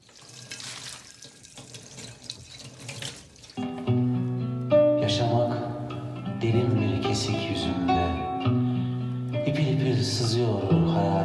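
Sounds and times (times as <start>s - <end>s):
faint shifting splashes of dishes being washed: 0.0s - 3.6s
tap water running into a sink as plates are washed: 0.0s - 3.8s
music with sustained tones: 3.6s - 11.2s
speech: 6.5s - 8.2s, 9.5s - 11.2s.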